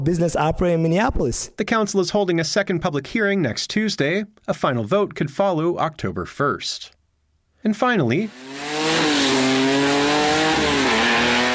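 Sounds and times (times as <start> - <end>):
speech: 0.0 - 7.0, 7.6 - 9.5
drag racing cars roaring on a drag strip: 8.3 - 11.5.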